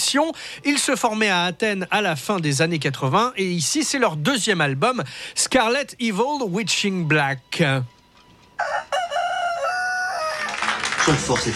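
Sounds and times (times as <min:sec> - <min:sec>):
speech: 0:00.1 - 0:08.0, 0:11.1 - 0:11.5
rooster crowing: 0:08.6 - 0:10.8.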